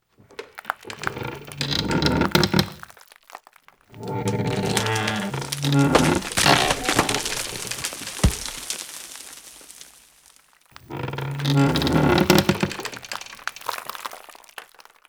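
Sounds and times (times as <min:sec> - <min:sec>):
heavy wood rocking: 0:00.3 - 0:02.9, 0:04.0 - 0:08.8, 0:10.8 - 0:13.7.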